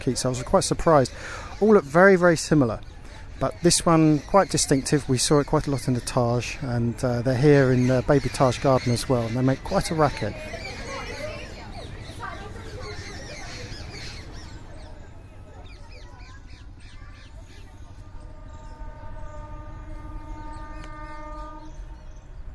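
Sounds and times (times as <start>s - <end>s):
speech: 0.0s - 10.7s
trains and town traffic in Agra: 0.0s - 22.5s
sustained train horn tone: 17.8s - 22.1s.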